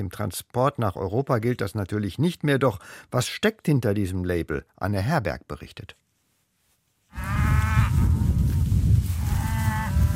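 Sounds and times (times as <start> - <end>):
speech: 0.0 - 6.0
black Angus cattle and calves lowing while grazing on pasture: 7.1 - 10.1.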